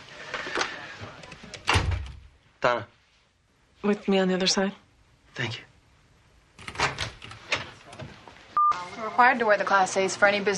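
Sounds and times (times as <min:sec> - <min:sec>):
door pushed shut with a solid low thud: 0:01.7 - 0:02.2
speech: 0:02.6 - 0:03.0, 0:03.8 - 0:04.8, 0:05.4 - 0:05.7, 0:09.1 - 0:10.5.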